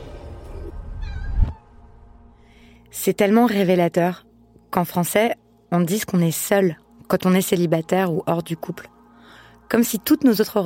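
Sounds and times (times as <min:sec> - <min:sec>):
faint hum: 0:00.5 - 0:10.6
cat meowing: 0:01.0 - 0:01.8
speech: 0:03.0 - 0:08.9, 0:09.7 - 0:10.6.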